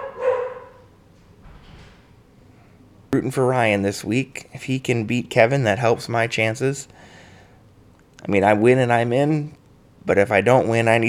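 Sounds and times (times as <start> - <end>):
dog giving one short bark: 0.0 - 0.9
speech: 3.1 - 7.2, 8.2 - 11.0.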